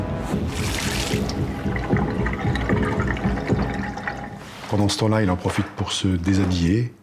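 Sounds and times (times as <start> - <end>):
water running from a bathroom tap: 0.4 - 4.7
speech: 4.8 - 7.0.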